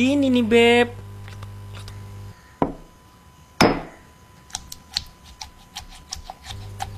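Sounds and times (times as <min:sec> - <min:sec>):
speech: 0:00.0 - 0:01.0
stone pestle knocks grinding chili in a stone mortar: 0:03.6 - 0:04.0
stone mortar and pestle clacks and scrapes grinding chili: 0:04.6 - 0:06.9.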